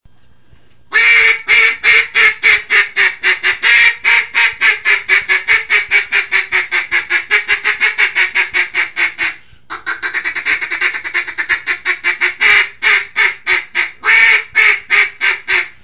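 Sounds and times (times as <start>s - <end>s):
mallard giving raspy quacks: 0.9s - 15.8s.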